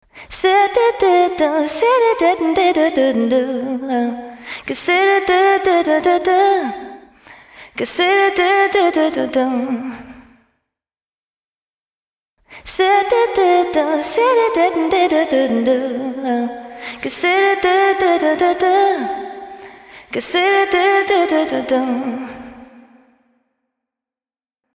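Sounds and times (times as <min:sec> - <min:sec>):
wet female vocal variations: 0:00.4 - 0:07.0, 0:07.8 - 0:10.1, 0:12.7 - 0:23.1.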